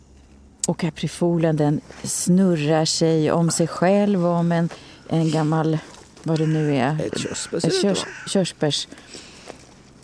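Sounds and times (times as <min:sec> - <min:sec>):
speech: 0:00.7 - 0:09.3
crow cawing: 0:06.3 - 0:08.5.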